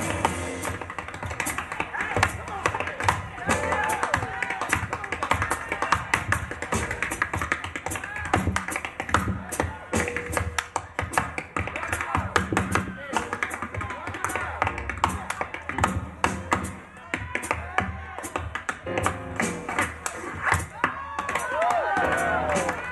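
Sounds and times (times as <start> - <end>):
tap-dance steps on a hard floor: 0.0 - 22.8
crowd noise: 0.0 - 22.9.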